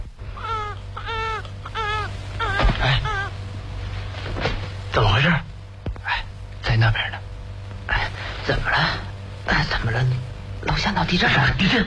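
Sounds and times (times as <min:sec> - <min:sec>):
steady low hum: 0:00.0 - 0:11.8
newborn baby crying in a shared dormitory at night: 0:00.4 - 0:03.4
speech: 0:10.9 - 0:11.8.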